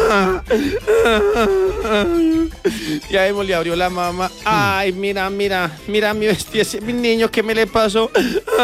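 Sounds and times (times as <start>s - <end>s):
person imitating a crying child with wailing sobs: 0.0s - 2.6s, 4.5s - 4.8s
speech: 0.1s - 8.6s.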